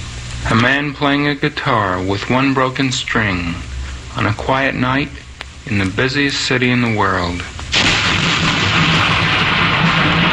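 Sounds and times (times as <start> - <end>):
speech: 0.5 - 7.6
thunder rumbling: 7.7 - 10.3.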